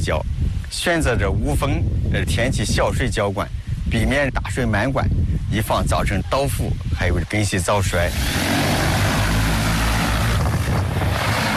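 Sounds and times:
speech: 0.0 - 8.6
agricultural crop-spraying drones flying overhead: 8.0 - 11.5.

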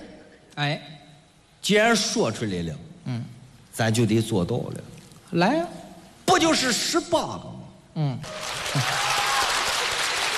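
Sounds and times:
speech: 0.6 - 1.0, 1.6 - 5.8, 6.4 - 9.1
audience applause: 8.2 - 10.3.

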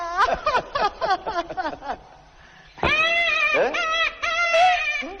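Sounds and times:
laughter: 0.2 - 2.2
baby crying with sobs and wails: 2.8 - 5.1.

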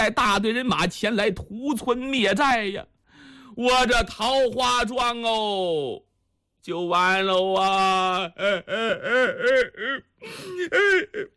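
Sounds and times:
speech: 0.0 - 2.9, 3.5 - 11.3
storyteller imitating an old man crying: 7.6 - 11.3.

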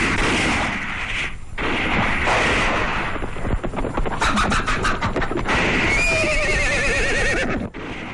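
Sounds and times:
rapid bursts of gunfire in a battle scene: 0.0 - 6.4
horses whinnying and neighing: 5.8 - 7.7.

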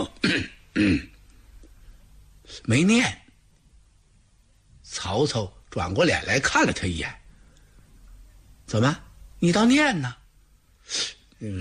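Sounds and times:
speech: 0.0 - 1.1, 2.6 - 3.2, 5.0 - 7.2, 8.7 - 10.2, 10.9 - 11.5
storyteller giving dry throat-clearing coughs: 0.0 - 1.2.

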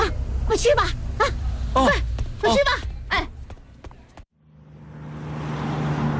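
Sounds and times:
bus engine idling and pulling away at a station: 0.0 - 6.1
speech: 0.5 - 2.8.

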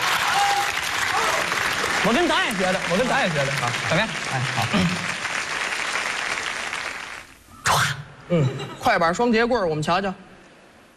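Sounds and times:
large audience applause: 0.0 - 7.3
speech: 2.0 - 5.2, 8.3 - 10.3.

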